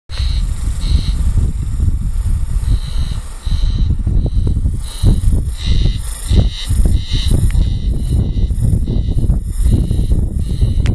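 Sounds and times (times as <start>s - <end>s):
haruzemi spring cicada: 0.1s - 10.9s.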